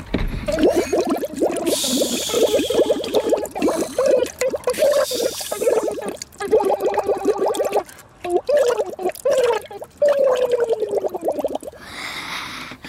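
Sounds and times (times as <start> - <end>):
water bubbling from a goldfish: 0.1 - 11.8.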